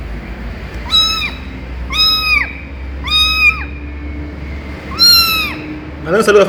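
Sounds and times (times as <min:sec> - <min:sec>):
faint constant background hum: 0:00.0 - 0:06.4
young domestic kitten mewing in an office: 0:00.4 - 0:05.8.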